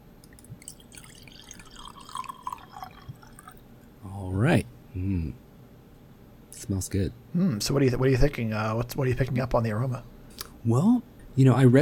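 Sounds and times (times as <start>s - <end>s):
sake pouring into a glass from a bottle: 0.4s - 3.6s
speech: 6.7s - 11.7s.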